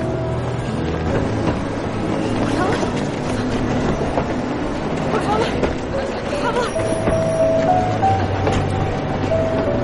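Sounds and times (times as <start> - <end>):
tram pulling away from a street stop with rail rumble: 0.0 - 9.8.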